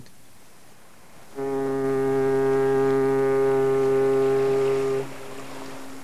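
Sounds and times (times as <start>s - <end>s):
faint lingering hum: 0.0s - 6.0s
deep foghorn blast: 1.3s - 6.0s.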